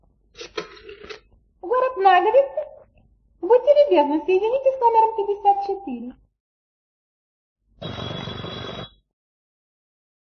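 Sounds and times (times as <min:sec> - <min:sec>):
speech: 0:02.0 - 0:02.6, 0:03.4 - 0:06.2
telephone bell ringing with a rattling metallic ring: 0:07.8 - 0:09.1.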